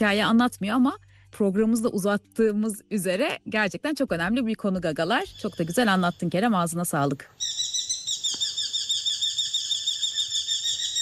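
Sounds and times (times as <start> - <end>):
speech: 0.0 - 7.5
recorded bird call with rapid trilled notes: 5.2 - 6.5, 7.4 - 11.0.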